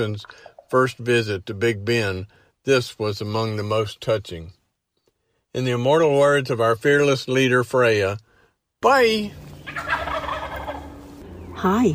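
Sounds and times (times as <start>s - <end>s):
speech: 0.0s - 4.6s, 5.5s - 9.9s, 11.6s - 11.9s
flock of wild turkeys gobbling near a house: 0.2s - 0.7s, 9.4s - 11.6s.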